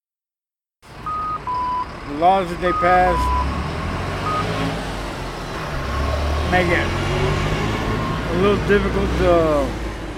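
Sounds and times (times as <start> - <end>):
rumble of busy street traffic: 0.8 - 10.1
crosswalk signal electronic beep on busy street: 1.0 - 2.0, 2.6 - 3.6, 4.2 - 4.6, 7.9 - 8.8
speech: 2.1 - 3.3, 6.5 - 7.2, 8.4 - 9.8.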